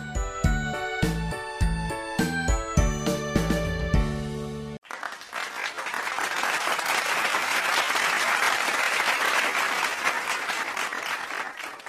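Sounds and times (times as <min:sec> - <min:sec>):
tinkling bell-like musical notes: 0:00.0 - 0:04.2
audience applauding after a performance: 0:04.8 - 0:11.8.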